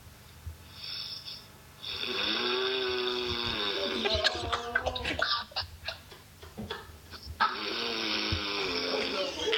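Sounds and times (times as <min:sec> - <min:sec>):
person snoring loudly and raspily: 0:00.8 - 0:05.0, 0:07.4 - 0:09.5
laughter: 0:03.7 - 0:07.0, 0:08.7 - 0:09.5.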